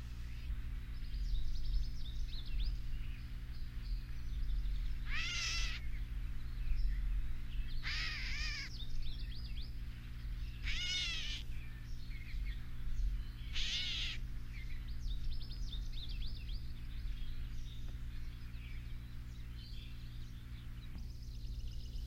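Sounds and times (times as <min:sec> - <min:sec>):
fainter chirps: 0:00.0 - 0:22.0
low steady hum: 0:00.0 - 0:22.0
gray catbird cat-like mewing calls: 0:04.8 - 0:06.0, 0:07.7 - 0:08.8, 0:10.5 - 0:11.6, 0:13.4 - 0:14.7.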